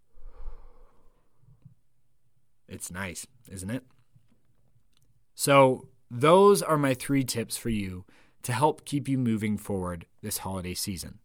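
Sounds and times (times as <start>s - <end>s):
soft breathing in and out during a guided breathing exercise: 0.0s - 1.6s, 8.1s - 8.4s
speech: 2.7s - 4.0s, 5.4s - 11.2s.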